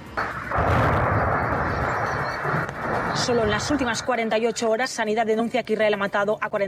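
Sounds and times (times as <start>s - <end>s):
artillery fire boom and rumbling roar: 0.2s - 4.0s
speech: 3.2s - 6.6s.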